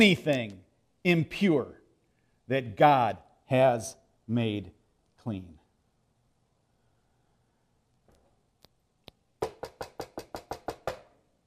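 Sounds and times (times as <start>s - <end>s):
speech: 0.0s - 1.8s, 2.5s - 5.6s
knocking on a door: 9.4s - 11.2s.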